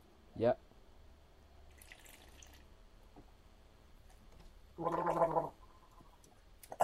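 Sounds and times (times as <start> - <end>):
speech: 0.4 - 0.7, 4.8 - 5.4
wet bubbling gargle: 4.8 - 5.6.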